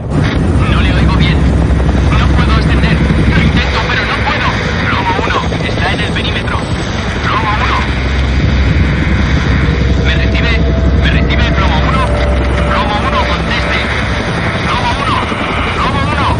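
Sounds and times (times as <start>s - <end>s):
helicopter flying out of a smoke column above a burning nuclear reactor: 0.0s - 16.3s
voices talking: 0.6s - 16.3s.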